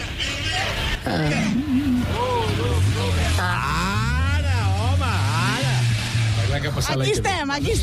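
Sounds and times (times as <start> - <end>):
people talking: 0.2 - 7.8
engine revving: 1.9 - 7.0.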